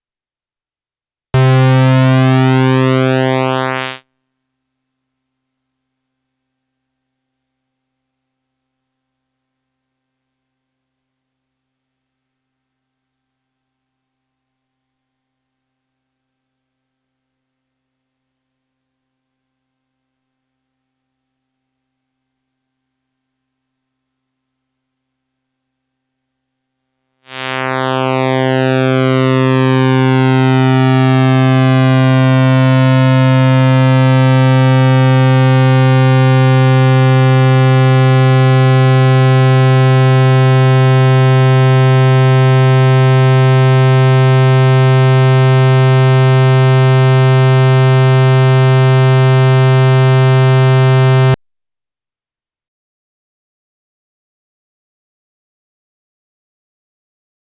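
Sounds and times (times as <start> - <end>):
pulse width modulation waveforms on a Toraiz synthesizer: 1.4 - 4.0, 27.3 - 51.4.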